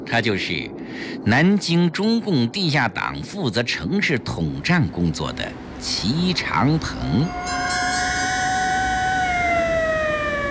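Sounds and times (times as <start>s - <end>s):
speech: 0.1s - 8.0s
street noise: 5.5s - 10.4s
police car siren wailing as the vehicle passes: 7.0s - 10.4s.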